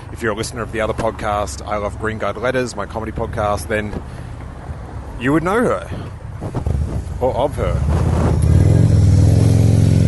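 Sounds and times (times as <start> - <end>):
speech: 0.2 - 4.2, 5.2 - 8.2
motorbike engine roaring past at Comic-Con: 7.8 - 10.0.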